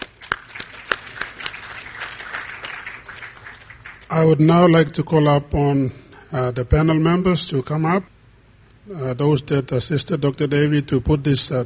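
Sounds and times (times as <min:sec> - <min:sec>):
audience applauding after a presentation: 0:00.0 - 0:04.3
speech: 0:04.1 - 0:08.1, 0:08.8 - 0:11.6.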